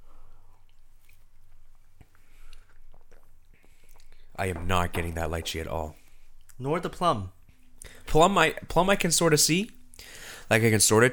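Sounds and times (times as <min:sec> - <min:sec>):
person sipping a drink with plum and lychee flavor notes: 0:00.3 - 0:04.3
soft slurp: 0:02.0 - 0:04.2
speech: 0:04.4 - 0:06.0, 0:06.6 - 0:07.4, 0:08.1 - 0:11.1.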